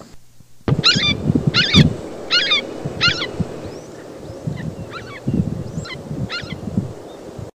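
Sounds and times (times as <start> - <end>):
low rumbling noise: 0.0 - 7.5
red-shouldered hawk calling harsh slurred kee-ah notes: 0.7 - 6.7.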